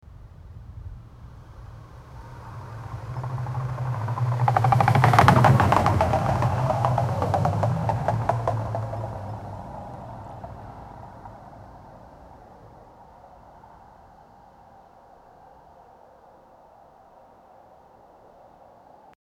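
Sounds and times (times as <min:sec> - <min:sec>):
wagon with wooden wheels rolling on asphalt: 0:02.2 - 0:12.5.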